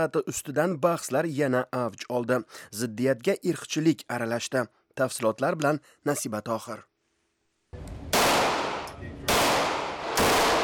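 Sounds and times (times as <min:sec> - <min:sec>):
speech: 0:00.0 - 0:06.9
gunfire at a shooting practice: 0:08.0 - 0:10.6.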